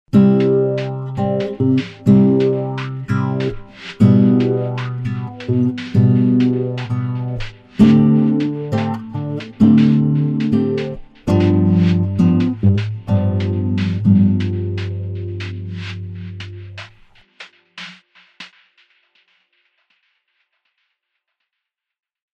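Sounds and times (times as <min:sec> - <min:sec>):
melted percussion: 0:00.1 - 0:17.5.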